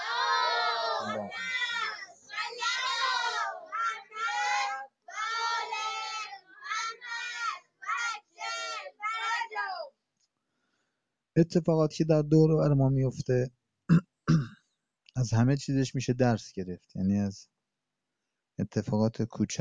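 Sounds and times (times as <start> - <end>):
large crowd reciting salawat blessing in unison: 0.0 - 4.6, 5.2 - 9.6
speech: 1.0 - 1.6, 11.4 - 14.1, 15.2 - 17.6, 18.6 - 19.6.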